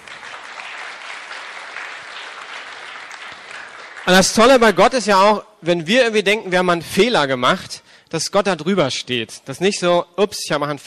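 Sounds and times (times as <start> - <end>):
crowd applauding: 0.0 - 4.7
speech: 4.1 - 10.8.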